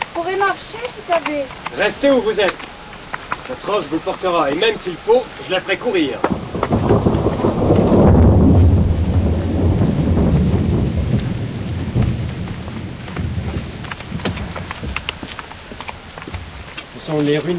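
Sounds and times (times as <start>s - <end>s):
steady rain pattering with scattered sharp drops: 0.0s - 17.5s
speech: 0.5s - 2.7s, 3.5s - 6.8s, 17.1s - 17.5s
deep loud rumble of thunder: 4.9s - 16.6s.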